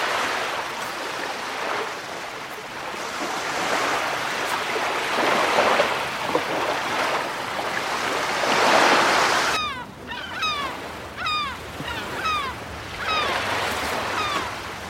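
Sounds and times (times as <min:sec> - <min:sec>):
sea waves breaking on shore: 0:00.0 - 0:14.8
sharp descending bird cries: 0:09.4 - 0:14.8.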